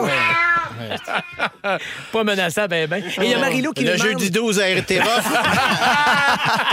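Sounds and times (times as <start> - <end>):
cat meowing loudly: 0.0 - 1.4
laughter: 0.0 - 2.0, 4.0 - 6.7
speech: 1.0 - 6.7.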